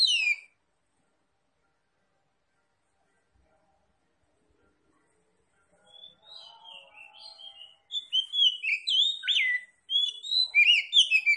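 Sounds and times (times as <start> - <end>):
Oriental magpie-robin singing vigorously: 0.0 - 0.5, 5.9 - 11.3.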